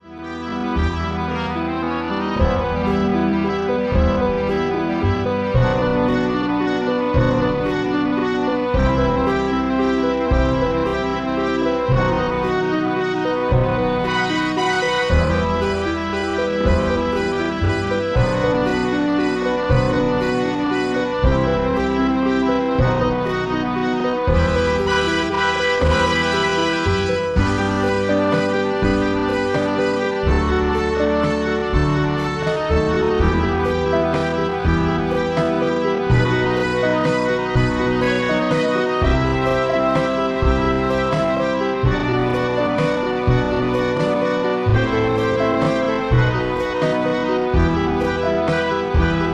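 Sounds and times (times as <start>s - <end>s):
slow karaoke backing track: 0.0s - 49.3s.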